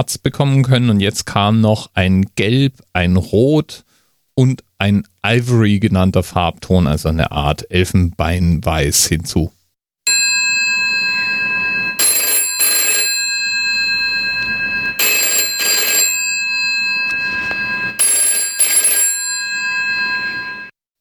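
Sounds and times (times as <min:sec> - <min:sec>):
speech: 0:00.0 - 0:09.6
GPO 746 rotary telephone bell ringing: 0:10.1 - 0:20.7.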